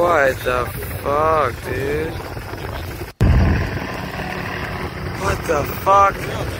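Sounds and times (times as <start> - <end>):
speech: 0.1 - 2.4, 5.2 - 6.5
plane flying low overhead played from a video: 3.2 - 6.5.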